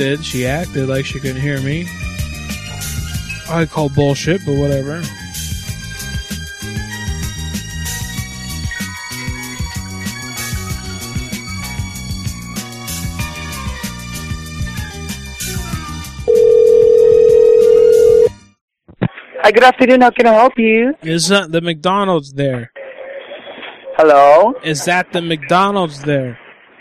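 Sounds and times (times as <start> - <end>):
speech: 0.0 - 2.2, 3.5 - 5.2, 19.4 - 22.8, 24.0 - 26.4
music: 0.0 - 18.6
telephone line tone: 16.3 - 18.4.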